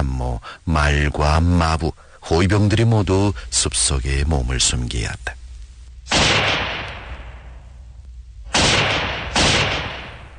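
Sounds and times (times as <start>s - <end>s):
speech: 0.2s - 5.4s
loud gunshots with long decay: 6.1s - 7.6s, 8.5s - 10.3s.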